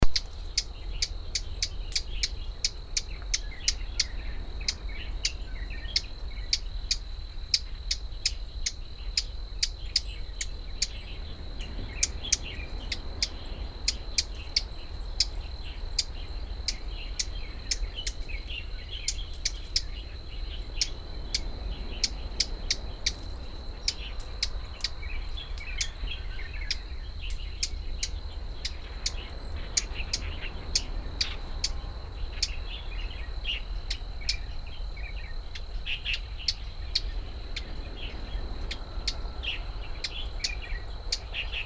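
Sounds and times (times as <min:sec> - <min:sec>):
brown-flanked bush warbler Horornis fortipes song: 0:00.0 - 0:41.6.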